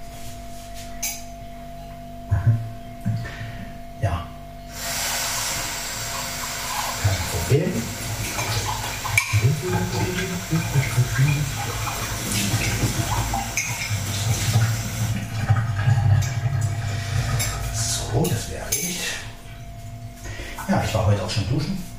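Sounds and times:
hum: 0:00.0 - 0:20.7
tap water running while a coffee cup is washed: 0:04.7 - 0:19.6.

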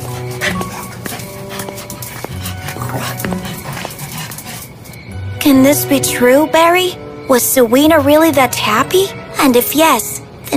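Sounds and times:
dog barking and yipping in short bursts: 0:00.0 - 0:04.9
steady tonal hums: 0:00.0 - 0:10.5
speech: 0:03.0 - 0:03.5, 0:05.5 - 0:10.5.

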